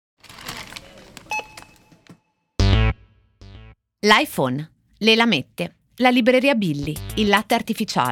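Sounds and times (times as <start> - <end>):
busy store clatter: 0.2 - 2.3
barcode scanner beeps at a supermarket checkout in Ohio: 1.3 - 1.8
speech: 4.0 - 8.1.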